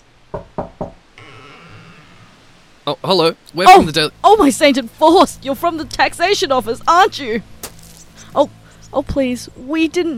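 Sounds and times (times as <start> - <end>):
knocking on a door: 0.3 - 1.0
speech: 2.9 - 7.5, 8.4 - 10.1.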